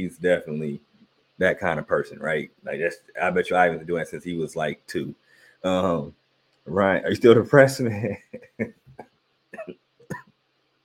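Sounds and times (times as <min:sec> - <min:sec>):
speech: 0:00.0 - 0:08.8
laughter: 0:07.9 - 0:09.0
person coughing: 0:09.6 - 0:10.3.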